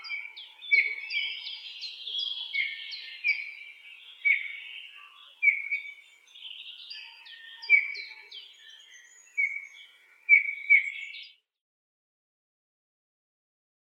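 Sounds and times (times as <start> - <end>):
Eurasian bullfinch piping calls: 0.0 - 6.0, 6.9 - 11.3.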